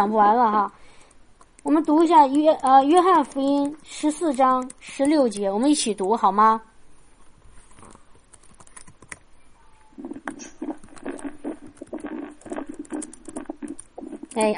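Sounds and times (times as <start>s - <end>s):
speech: 0.0s - 0.8s, 1.6s - 6.7s, 14.4s - 14.5s
typing on a computer keyboard: 0.6s - 6.3s, 7.8s - 9.2s, 10.0s - 14.5s.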